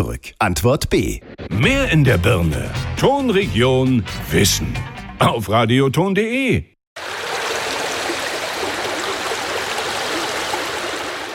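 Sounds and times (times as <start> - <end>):
speech: 0.0 - 6.7
water splashing in a bathtub: 7.0 - 11.3.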